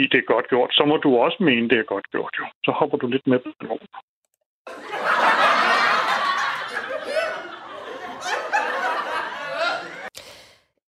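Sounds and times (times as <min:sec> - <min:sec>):
speech: 0:00.0 - 0:04.1
recorded audience laughter track: 0:04.7 - 0:10.2.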